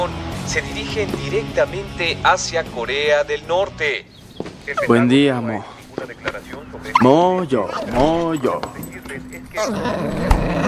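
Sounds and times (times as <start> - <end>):
speech: 0.1 - 10.6
dog growling and grumbling in a low rumble: 4.7 - 5.4, 6.9 - 8.3, 9.5 - 10.6.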